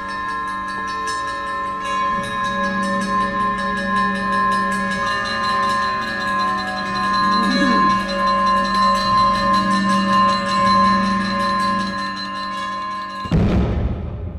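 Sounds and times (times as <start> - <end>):
clanging bell: 0.0 - 13.4
wailing siren: 6.0 - 8.2.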